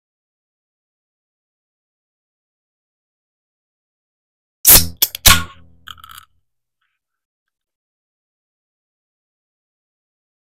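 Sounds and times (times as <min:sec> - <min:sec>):
can opening: 0:04.7 - 0:06.3.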